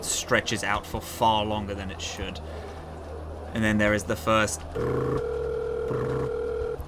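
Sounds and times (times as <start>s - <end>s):
speech: 0.2s - 2.7s, 3.5s - 6.4s
electronic phone ringing tone: 4.8s - 6.8s.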